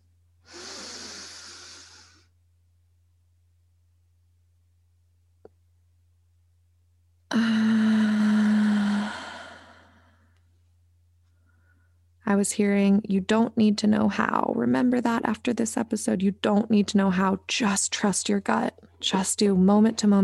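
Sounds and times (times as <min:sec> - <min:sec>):
steady low hum: 0:00.0 - 0:20.2
deep breaths taken during a guided exercise: 0:00.4 - 0:02.3, 0:07.3 - 0:10.4, 0:11.3 - 0:12.1
speech: 0:12.3 - 0:20.2.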